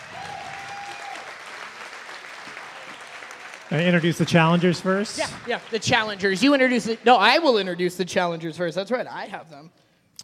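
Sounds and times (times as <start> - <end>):
audience at a comedy show applauding: 0.0 - 7.8
speech: 3.7 - 9.8.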